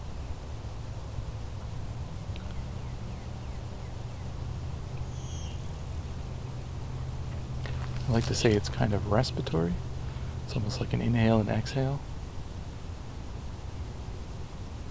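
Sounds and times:
blue-winged warbler bee-buzz song in a shrubby meadow: 0.0 - 12.0
low rumble: 0.0 - 14.8
soft blue-winged warbler chips: 7.6 - 8.7
speech: 8.2 - 9.9, 10.5 - 12.1.

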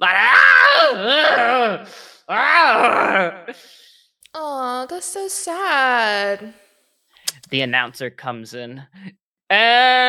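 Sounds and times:
man screaming in pain: 0.0 - 3.5, 9.5 - 10.0
speech: 1.0 - 3.8, 4.4 - 6.6, 7.4 - 10.0.

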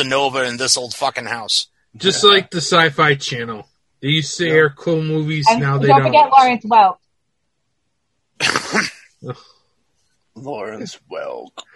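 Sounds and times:
laughter: 0.0 - 6.3, 8.4 - 9.4, 10.4 - 11.4
speech: 0.0 - 7.0, 8.4 - 9.6, 10.4 - 11.7
person coughing with a harsh rasping cough: 2.0 - 3.4, 5.5 - 6.1, 8.4 - 9.0.

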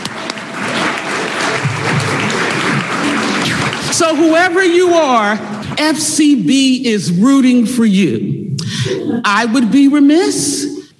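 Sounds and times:
room full of people applauding: 0.0 - 4.6
speech: 4.0 - 10.7.

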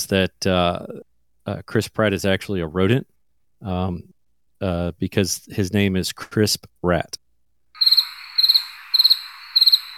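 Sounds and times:
speech: 0.0 - 7.2
constant high insect hum: 7.8 - 9.9
crickets chirping in rapid trills: 7.8 - 9.9.

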